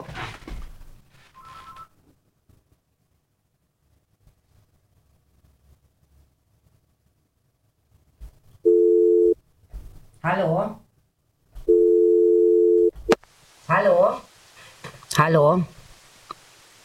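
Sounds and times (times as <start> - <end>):
long steady electronic phone rings over the line: 8.7 - 9.4, 11.7 - 13.0
speech: 10.2 - 10.8, 15.2 - 15.8.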